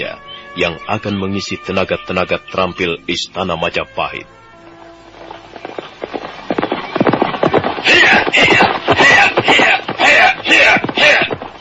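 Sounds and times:
speech: 0.0s - 4.4s
horse hooves clip-clopping entering training centre grounds: 4.6s - 11.6s
horse snorting or whinnying: 5.8s - 11.6s.

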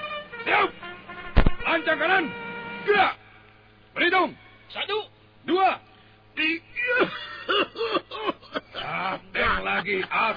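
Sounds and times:
speech: 0.4s - 0.8s, 1.7s - 3.2s, 4.0s - 10.3s
person coughing in a marching drill: 7.0s - 9.1s.

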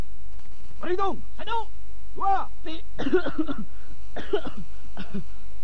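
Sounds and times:
speech: 0.9s - 5.3s
person in a marching formation coughing harshly: 3.0s - 5.3s.

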